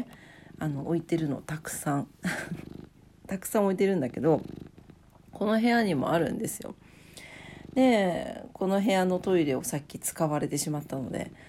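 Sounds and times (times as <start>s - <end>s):
speech: 0.0s - 2.7s, 3.3s - 4.6s, 5.4s - 6.9s, 7.8s - 11.4s
cat purring: 0.0s - 11.4s
person laughing: 2.2s - 2.7s.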